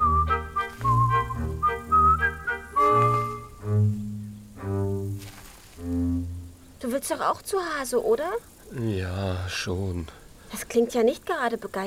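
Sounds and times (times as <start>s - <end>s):
chick character whistling a cheerful pretty melody: 0.0s - 3.6s
soft low tones: 0.0s - 6.9s
speech: 7.0s - 11.8s.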